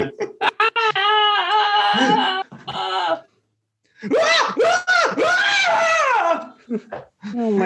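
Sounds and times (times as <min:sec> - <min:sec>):
laughter: 0:00.0 - 0:02.9, 0:06.4 - 0:07.6
person screaming on request: 0:00.8 - 0:03.3, 0:04.1 - 0:06.6
speech: 0:06.7 - 0:07.6.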